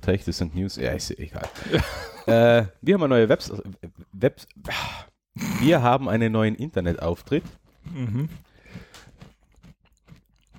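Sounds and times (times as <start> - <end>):
speech: 0.0 - 8.9
laughter: 1.5 - 2.7
chewing a crisp snack: 6.2 - 10.5.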